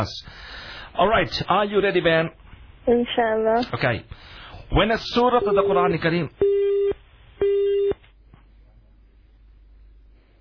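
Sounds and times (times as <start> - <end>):
speech: 0.0 - 6.5
telephone busy signal beeps on a call-in line: 6.4 - 8.0.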